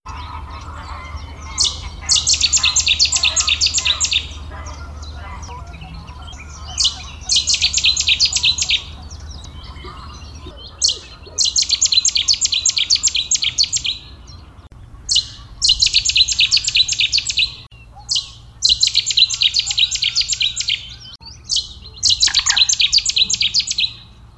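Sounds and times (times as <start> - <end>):
Cetti's warbler singing: 0.1 - 24.3.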